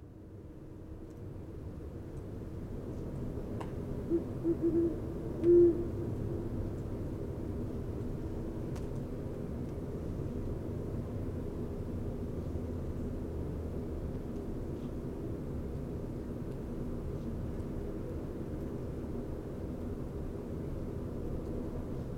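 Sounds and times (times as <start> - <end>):
low background hiss: 0.0 - 22.1
great horned owl giving soft deep hoots near west Dyke Marsh: 4.1 - 6.5.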